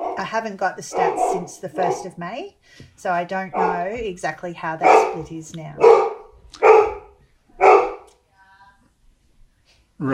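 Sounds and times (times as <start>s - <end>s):
dog barking: 0.0s - 0.3s, 0.9s - 2.2s, 3.5s - 4.0s, 4.8s - 8.1s
speech: 0.2s - 6.1s, 10.0s - 10.1s.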